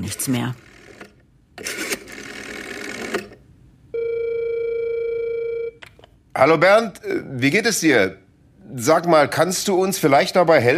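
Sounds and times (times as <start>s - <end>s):
speech: 0.0s - 0.7s, 6.4s - 10.7s
telephone dial mechanical whirring at a desk: 0.1s - 3.4s
steady electronic telephone tone: 3.9s - 5.8s.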